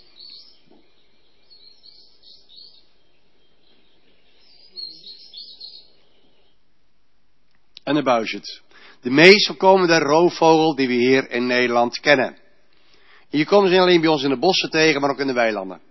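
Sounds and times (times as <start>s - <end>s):
male European stonechat chirping on the heath: 0.0s - 6.0s
low background noise: 0.0s - 15.9s
speech: 7.9s - 12.4s, 13.3s - 15.9s.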